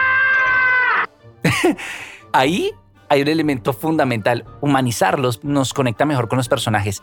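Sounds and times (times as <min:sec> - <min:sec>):
cartoon cat's humanlike scream: 0:00.0 - 0:01.1
laughter: 0:01.4 - 0:01.8
speech: 0:01.4 - 0:07.0.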